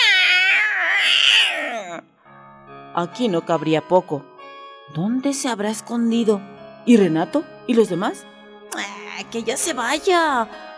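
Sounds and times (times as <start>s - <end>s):
cat yowling horribly while scratching at stone: 0.0s - 2.0s
speech: 3.0s - 4.3s, 4.9s - 10.7s.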